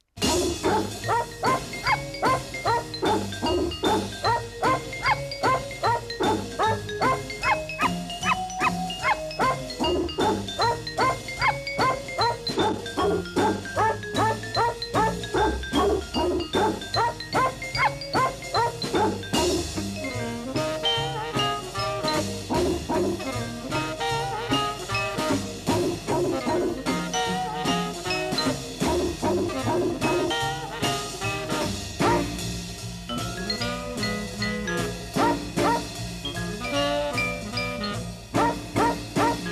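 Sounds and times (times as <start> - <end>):
bouncy music built from dog barks over a steady beat: 0.2 - 32.6, 33.6 - 39.4.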